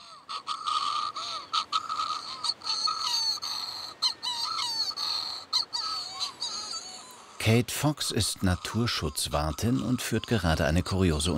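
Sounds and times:
recorded bird calls played back through a small voice recorder: 0:00.0 - 0:07.2
speech: 0:07.4 - 0:11.3.

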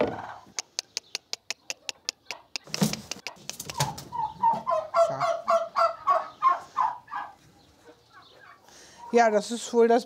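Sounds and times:
turkeys calling and clucking at a feeder where they lay eggs: 0:00.0 - 0:09.8
sharp ticks: 0:00.6 - 0:03.8
speech: 0:09.1 - 0:10.0.

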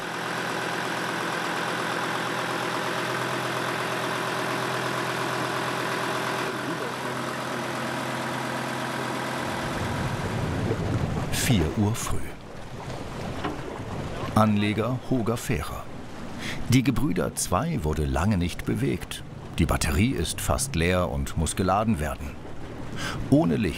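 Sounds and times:
boat engine with newly installed gearbox running: 0:00.0 - 0:23.7
speech: 0:11.5 - 0:12.4, 0:14.4 - 0:15.9, 0:16.7 - 0:22.4, 0:23.0 - 0:23.7.

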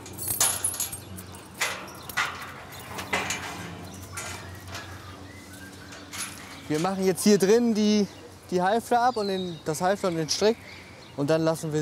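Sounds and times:
keys jangling while unlocking a gate: 0:00.0 - 0:04.9, 0:05.9 - 0:06.9
metallic rattles of a gate: 0:00.0 - 0:07.7
speech: 0:06.7 - 0:11.8.

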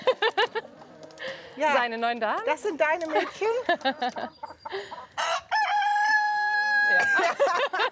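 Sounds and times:
laughter: 0:00.0 - 0:00.7, 0:03.1 - 0:04.9, 0:06.9 - 0:07.9
hens clucking and squawking: 0:00.0 - 0:07.9
speech: 0:01.6 - 0:05.1
rooster crowing: 0:05.2 - 0:07.3.

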